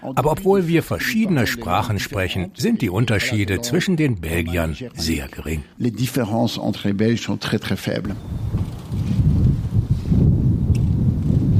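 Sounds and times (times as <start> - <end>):
speech: 0.0 - 8.5
strong wind on open race track: 8.1 - 11.5.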